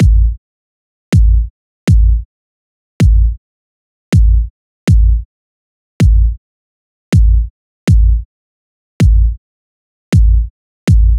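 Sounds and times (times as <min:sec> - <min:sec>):
hip hop 80 kick drum: 0:00.0 - 0:00.4, 0:01.1 - 0:02.3, 0:03.0 - 0:03.4, 0:04.1 - 0:05.3, 0:06.0 - 0:06.4, 0:07.1 - 0:08.3, 0:09.0 - 0:09.4, 0:10.1 - 0:11.1.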